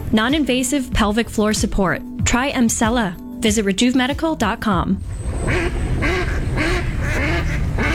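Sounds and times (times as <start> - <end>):
speech: 0.1 - 5.8
faint low rumble: 4.8 - 7.9
ducks quacking: 5.3 - 7.9.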